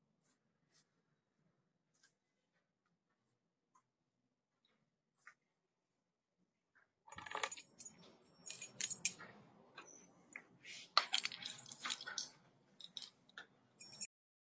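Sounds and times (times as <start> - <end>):
bunch of keys jingling while being handed over: 7.1 - 9.3, 11.0 - 13.2, 13.8 - 14.1.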